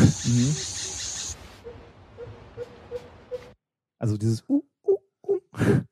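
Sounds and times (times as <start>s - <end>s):
monkeys hooting: 0.0s - 1.3s
jungle insects buzzing: 0.0s - 1.4s
speech: 0.3s - 0.8s, 4.0s - 4.7s.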